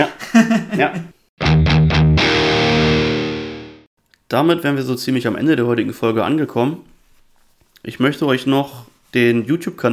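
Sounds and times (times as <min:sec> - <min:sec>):
speech: 0:00.0 - 0:01.2, 0:04.3 - 0:06.9, 0:07.8 - 0:09.9
laughter: 0:00.2 - 0:01.1
heavily distorted electric guitar riff through effects pedal: 0:01.4 - 0:03.9.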